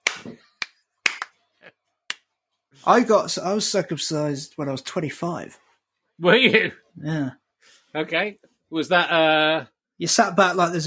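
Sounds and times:
sharp hand claps to swat a fly: 0:00.0 - 0:01.4
speech: 0:02.8 - 0:05.6, 0:06.2 - 0:10.8.

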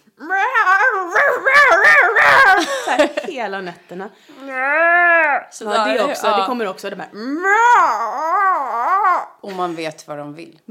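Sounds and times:
person's voice imitating a cat in heat yowling: 0:00.0 - 0:02.6, 0:04.4 - 0:06.0, 0:07.2 - 0:09.4
speech: 0:03.4 - 0:08.4, 0:09.4 - 0:10.6.

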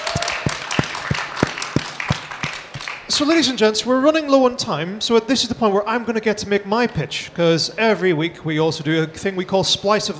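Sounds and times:
audience applause: 0:00.0 - 0:03.1
speech: 0:03.1 - 0:10.1.

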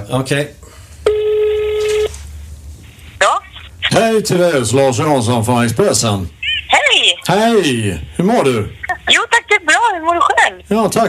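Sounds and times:
speech: 0:00.1 - 0:00.6, 0:04.0 - 0:06.4, 0:07.2 - 0:09.2, 0:10.0 - 0:11.0
steady telephone line tone: 0:01.1 - 0:02.1.

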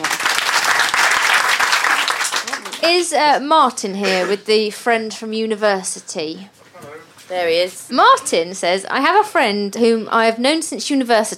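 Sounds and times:
audience applause for a contestant: 0:00.0 - 0:03.2
speech: 0:02.9 - 0:11.3.

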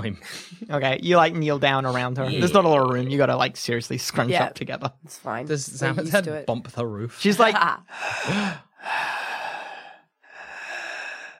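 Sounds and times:
speech: 0:00.0 - 0:09.2
voice imitating a woman's labored breathing: 0:07.9 - 0:11.3.

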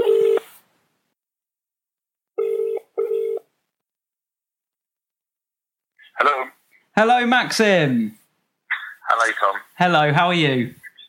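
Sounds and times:
electronic ringback tone in British double-burst pattern on speakerphone: 0:00.0 - 0:00.5, 0:02.4 - 0:03.4
speech: 0:06.1 - 0:08.2, 0:09.1 - 0:10.8.

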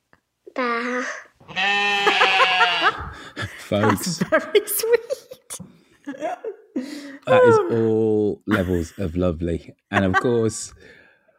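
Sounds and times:
speech: 0:00.6 - 0:01.9, 0:03.7 - 0:05.2, 0:07.3 - 0:11.0
child imitating a sheep's bleat: 0:00.6 - 0:02.8
laughter: 0:01.9 - 0:10.7.

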